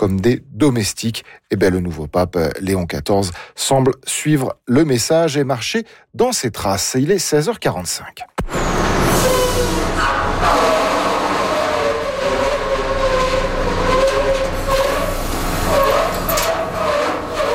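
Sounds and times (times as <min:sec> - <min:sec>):
speech: 0:00.0 - 0:11.1
oil drilling pump drone with low hum and rhythmic clatter: 0:08.4 - 0:17.5.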